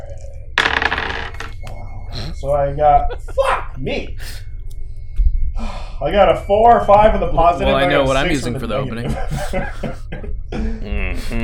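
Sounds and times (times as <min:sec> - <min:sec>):
dice tumbling and rattling across a table: 0:00.6 - 0:01.6
laughter: 0:02.1 - 0:04.4, 0:07.1 - 0:11.4
speech: 0:02.4 - 0:04.4, 0:05.6 - 0:11.4.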